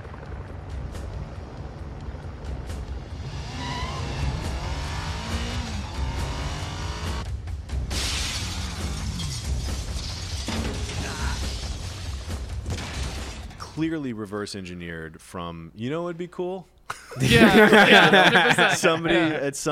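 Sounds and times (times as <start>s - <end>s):
motorcycle engine revving: 0.0s - 7.3s
glass window shattering: 7.9s - 13.6s
debris crashing: 7.9s - 13.7s
speech: 13.8s - 19.6s
laughter: 16.9s - 19.4s.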